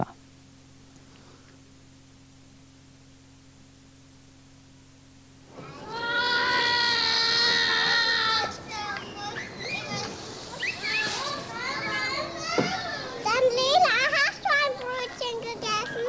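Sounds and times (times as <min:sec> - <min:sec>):
toddlers chattering, squealing and calling outdoors in a daycare garden: 0:05.5 - 0:16.0.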